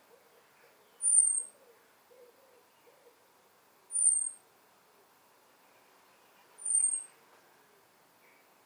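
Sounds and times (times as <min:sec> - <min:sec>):
faint background noise: 0:00.0 - 0:08.6
European robin calling with thin high whistles: 0:01.0 - 0:01.5, 0:03.9 - 0:04.4, 0:06.6 - 0:07.1.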